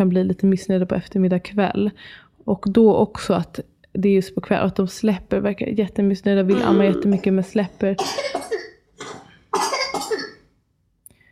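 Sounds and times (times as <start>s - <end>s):
speech: 0.0s - 9.7s
small boy coughing in harsh bursts: 6.5s - 7.2s, 8.0s - 10.4s.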